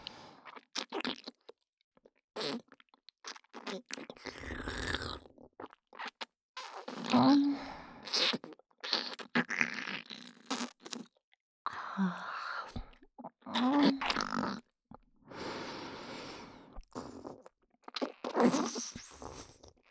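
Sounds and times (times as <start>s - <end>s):
sticky wet oral sex mouth sounds in the left ear: 0.5s - 1.4s, 2.4s - 7.4s, 8.0s - 11.1s, 12.7s - 14.7s, 16.7s - 19.7s.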